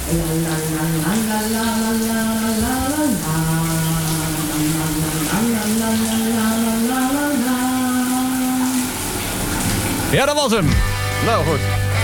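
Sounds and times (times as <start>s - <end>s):
person singing a wavering wordless melody: 0.0s - 9.0s
running water hissing from a shower: 0.0s - 12.0s
speech: 0.1s - 2.4s, 10.2s - 11.8s.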